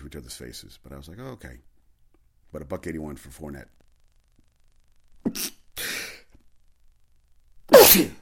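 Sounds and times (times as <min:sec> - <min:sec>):
speech: 0:00.1 - 0:01.7, 0:02.5 - 0:03.8, 0:05.3 - 0:05.6, 0:07.9 - 0:08.2
person sneezing: 0:05.3 - 0:06.2, 0:07.7 - 0:08.2.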